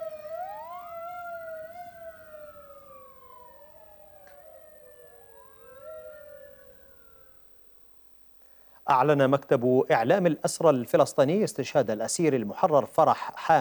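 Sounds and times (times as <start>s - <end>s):
ambulance siren wailing: 0.0s - 7.9s
speech: 8.9s - 13.6s.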